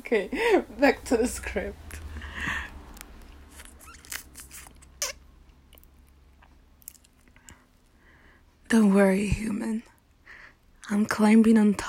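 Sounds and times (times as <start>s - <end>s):
speech: 0.1s - 2.6s, 8.7s - 9.9s, 10.9s - 11.8s
chewing food with crunchy bites: 2.9s - 7.6s
soft wet mouth clicks: 2.9s - 7.6s.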